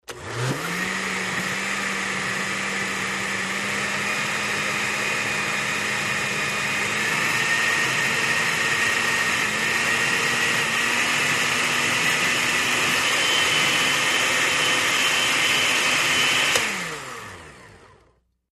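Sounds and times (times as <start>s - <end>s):
blender increasing speed: 0.0s - 18.2s.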